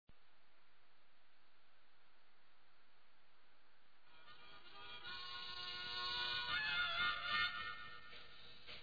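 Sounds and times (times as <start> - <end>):
harmonica solo: 4.1 - 8.6.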